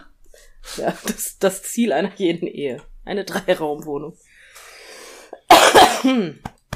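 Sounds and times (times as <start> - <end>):
speech: 0.8 - 4.3, 6.0 - 6.5
person coughing harshly: 5.4 - 6.4.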